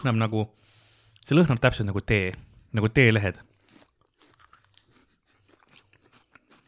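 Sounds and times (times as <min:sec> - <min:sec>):
speech: 0:00.0 - 0:03.5
biting and crunching a green tea KitKat wafer: 0:03.4 - 0:06.6.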